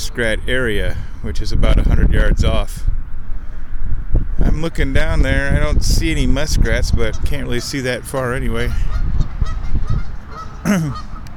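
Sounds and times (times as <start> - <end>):
low rumble of wind or ambient noise: 0.0 - 11.3
speech: 0.1 - 3.0, 4.6 - 9.6, 10.6 - 11.1
geese honking outdoors: 8.7 - 11.3.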